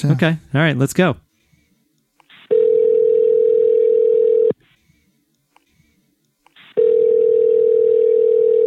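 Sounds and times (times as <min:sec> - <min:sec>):
speech: 0:00.0 - 0:01.2
telephone line tone while placing a call: 0:02.5 - 0:04.6, 0:06.8 - 0:08.6.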